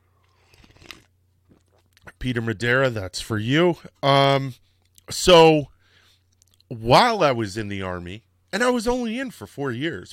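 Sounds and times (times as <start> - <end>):
slurping sip of coffee from a cup: 0.2 - 1.9
speech: 2.2 - 5.7, 6.7 - 10.1.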